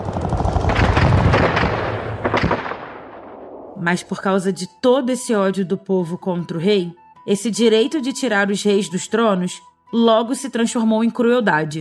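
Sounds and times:
dense rumbling roar of explosions: 0.0s - 3.8s
rapid bursts of gunfire: 0.0s - 3.8s
speech: 3.8s - 11.7s.

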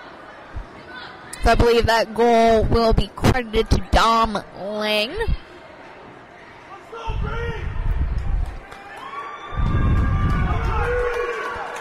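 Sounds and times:
speech: 1.5s - 5.4s
hockey arena crowd cheering: 6.7s - 11.8s.

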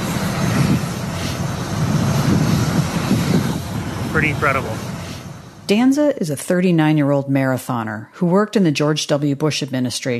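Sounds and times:
team jet engine roar arriving on the tarmac: 0.0s - 7.8s
speech: 4.2s - 4.9s, 5.7s - 10.1s.

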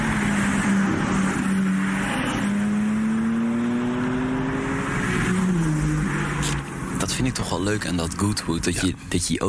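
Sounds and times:
BMW M3 Touring estate 510 hp engine roaring at a hillclimb: 0.0s - 7.4s
speech: 7.2s - 9.4s.

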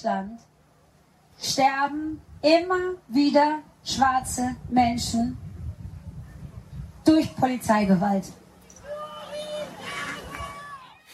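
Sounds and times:
speech: 0.0s - 0.5s, 1.4s - 5.4s, 7.1s - 8.4s
crowd hubbub at a Black Lives Matter street demonstration in Germany: 8.4s - 11.1s
people shouting at a street demonstration: 8.7s - 11.1s.

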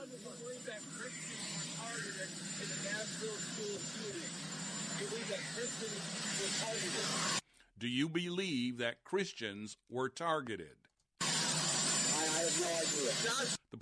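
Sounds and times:
big old helicopter roaring: 0.0s - 7.4s, 11.2s - 13.7s
speech: 0.3s - 10.9s, 12.6s - 13.8s.

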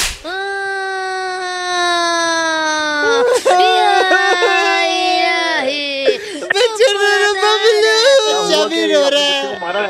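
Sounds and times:
baby wailing in a police station: 0.3s - 9.7s
laughter: 3.0s - 9.8s.

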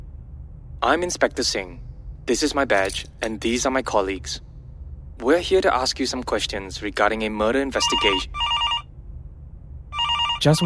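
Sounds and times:
low hum: 0.0s - 10.6s
speech: 0.8s - 4.5s, 5.2s - 8.5s, 10.4s - 10.6s
telephone ringing with an electronic trill: 7.8s - 8.8s, 10.0s - 10.6s.

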